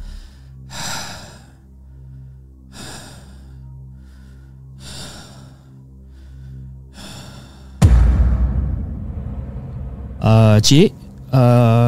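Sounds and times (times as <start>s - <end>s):
slow heavy breathing from a caller on a phone call: 0.1s - 7.8s
low steady hum on a phone call: 7.8s - 11.8s
speech: 10.3s - 11.8s.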